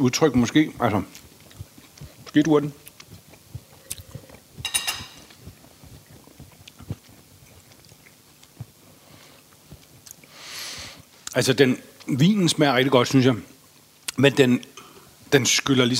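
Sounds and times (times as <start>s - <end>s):
speech: 0.0s - 1.3s, 2.3s - 2.8s, 11.4s - 13.5s, 14.2s - 14.7s, 15.3s - 15.9s
chewing on a piece of chili during a food and wine tasting: 0.3s - 10.4s.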